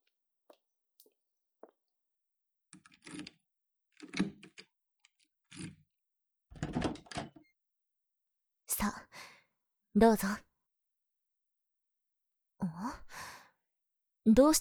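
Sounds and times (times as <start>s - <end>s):
lock turning with rattling clunks: 2.8s - 3.4s, 4.0s - 4.7s, 5.5s - 5.8s, 6.5s - 7.5s
door pushed open: 6.5s - 7.5s
key clicking into a lock: 6.6s - 7.4s
speech: 10.0s - 10.5s, 14.3s - 14.5s.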